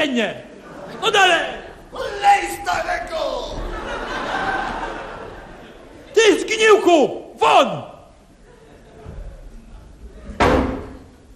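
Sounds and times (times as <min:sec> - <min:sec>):
speech: 0:00.0 - 0:03.6, 0:06.2 - 0:07.9
laughter: 0:00.4 - 0:06.6, 0:08.2 - 0:10.4
door slamming shut during a heated family row: 0:10.4 - 0:11.1.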